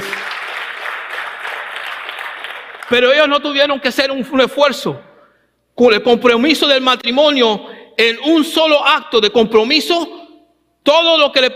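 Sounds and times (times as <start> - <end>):
audience applause: 0.0 - 3.0
speech: 2.9 - 5.1, 5.8 - 10.2, 10.8 - 11.5.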